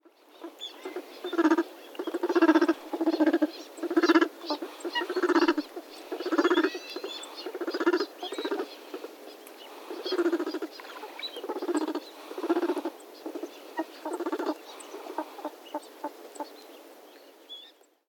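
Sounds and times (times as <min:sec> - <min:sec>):
northern pintail duck in Kawajima: 0:00.4 - 0:09.1, 0:09.9 - 0:16.1.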